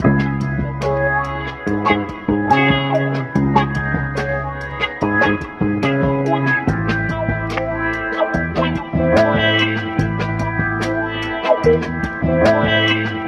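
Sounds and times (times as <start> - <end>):
sweet phonk guitar loop: 0.0 - 13.2.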